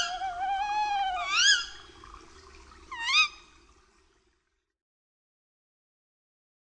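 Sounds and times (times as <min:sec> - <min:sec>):
tawny owl giving a harsh upward-sweeping call: 0:00.0 - 0:01.8, 0:02.9 - 0:03.4
low background hum: 0:00.0 - 0:04.5.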